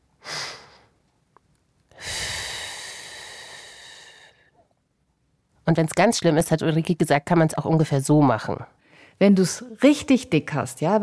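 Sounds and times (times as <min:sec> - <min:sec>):
person breathing in and exhaling slowly in a breathing exercise: 0:01.9 - 0:04.6
speech: 0:05.7 - 0:11.0.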